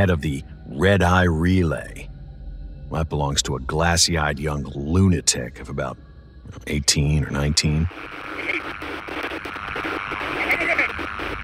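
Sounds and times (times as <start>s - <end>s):
speech: 0.0s - 2.1s, 2.9s - 9.2s
screen static hissing and crackling with garbled radio-like warbling: 5.3s - 11.4s.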